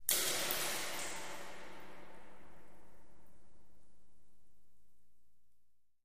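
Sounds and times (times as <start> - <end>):
echoing water drips in a cave: 0.0 - 4.8.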